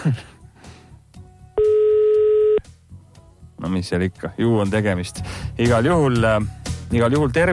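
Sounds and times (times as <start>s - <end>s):
speech: 0.0s - 0.3s, 3.7s - 7.5s
telephone ringing tone: 1.6s - 2.6s.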